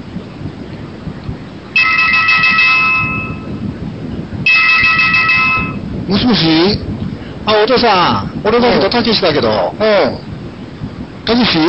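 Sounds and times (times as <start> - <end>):
home telephone ringing with electronic trilling: 1.8 - 3.6, 4.5 - 5.9
speech: 6.1 - 10.3, 11.2 - 11.6.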